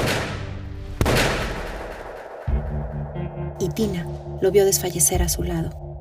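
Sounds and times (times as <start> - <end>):
gunshots on a street: 0.0 - 2.7
low rumbling background: 0.0 - 6.0
speech: 3.6 - 5.8.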